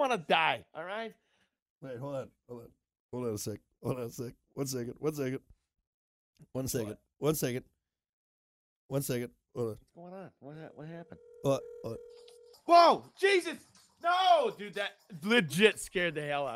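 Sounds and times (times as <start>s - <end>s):
speech: 0.0s - 1.2s, 1.8s - 5.6s, 6.4s - 7.7s, 8.9s - 16.5s
phone ringing with a steady electronic tone: 10.7s - 13.1s.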